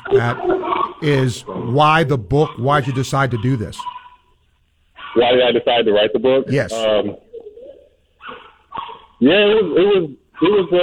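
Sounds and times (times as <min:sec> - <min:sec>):
speech: 0:00.1 - 0:03.9, 0:05.2 - 0:07.2, 0:09.2 - 0:10.8
female dog barking excitedly as people come in: 0:02.4 - 0:04.2, 0:08.2 - 0:09.1.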